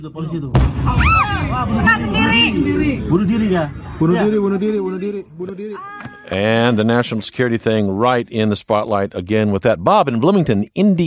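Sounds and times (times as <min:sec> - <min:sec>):
speech: 0:00.0 - 0:11.0
agitated people shouting and chattering in a busy outdoor street: 0:00.2 - 0:07.3
gunfire in a city street: 0:00.5 - 0:02.6
explosion bang in a city street: 0:00.5 - 0:05.0.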